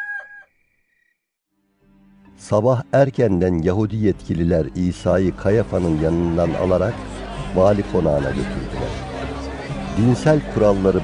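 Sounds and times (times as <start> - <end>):
rooster crowing: 0.0 - 0.5
speech: 2.4 - 9.1, 10.0 - 11.0.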